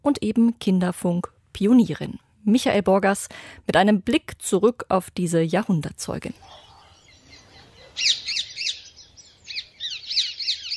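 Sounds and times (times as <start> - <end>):
speech: 0.0 - 6.6, 8.0 - 8.3
rose-ringed parakeets squawking at a city cemetery in Cologne: 6.4 - 10.7.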